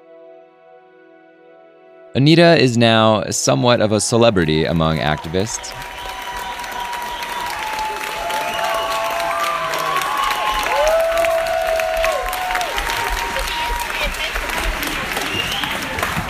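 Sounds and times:
speech: 0:02.2 - 0:06.0
large crowd giving a standing ovation at a forum: 0:03.5 - 0:16.2
brief whistle-like tone: 0:05.3 - 0:10.7, 0:15.2 - 0:15.9.

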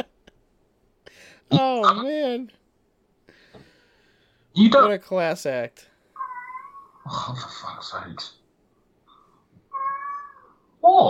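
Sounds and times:
speech: 0:01.5 - 0:02.6, 0:04.6 - 0:05.9, 0:07.1 - 0:08.4, 0:10.8 - 0:11.0
cat meowing: 0:06.2 - 0:07.1, 0:09.7 - 0:11.0.

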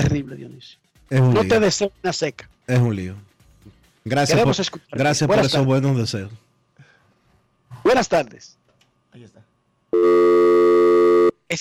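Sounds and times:
speech: 0:00.0 - 0:03.3, 0:04.0 - 0:06.4, 0:07.8 - 0:11.5
telephone busy tone after caller hangs up: 0:10.0 - 0:11.3.

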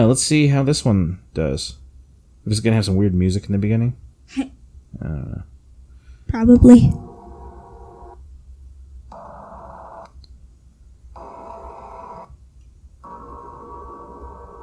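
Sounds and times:
speech: 0:00.0 - 0:01.8, 0:02.4 - 0:05.5, 0:06.3 - 0:07.1
low rumble in a space recording of Jupiter: 0:06.3 - 0:07.1.

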